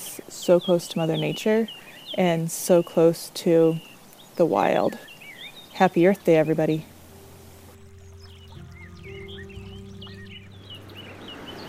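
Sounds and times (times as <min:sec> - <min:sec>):
birds chirping and calling: 0:00.0 - 0:11.6
speech: 0:00.2 - 0:05.1, 0:05.8 - 0:06.9
snowmelt creek rushing among trees in sunny weather: 0:05.1 - 0:11.6.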